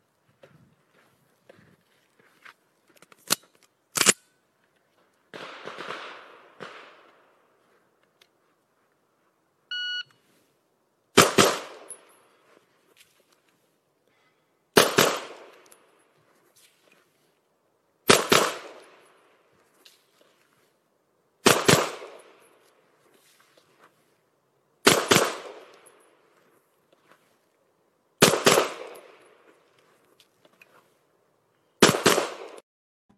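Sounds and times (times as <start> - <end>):
pistol shots with short echo in a step back shooting drill: 5.3 - 7.2, 11.2 - 12.0, 14.8 - 15.6, 18.1 - 19.0, 21.4 - 22.4, 24.8 - 25.9, 28.2 - 29.2, 31.8 - 32.6
shot timer beep: 9.7 - 10.2.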